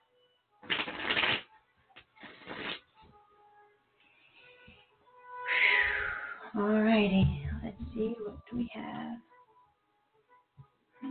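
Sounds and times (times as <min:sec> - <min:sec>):
tarot cards being shuffled in riffling bursts: 0:00.6 - 0:01.4, 0:02.2 - 0:02.8
speech: 0:06.6 - 0:07.4, 0:08.0 - 0:09.3.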